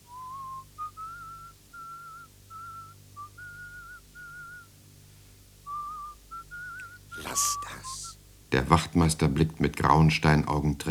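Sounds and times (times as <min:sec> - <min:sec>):
person softly whistling a melody: 0:00.0 - 0:04.8, 0:05.7 - 0:08.1
speech: 0:07.4 - 0:10.9.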